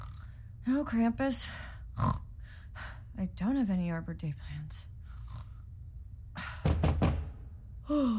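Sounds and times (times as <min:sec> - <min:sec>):
speech: 0:00.7 - 0:02.2, 0:02.8 - 0:04.8, 0:07.9 - 0:08.1
sharp knocks on a door: 0:06.7 - 0:07.5.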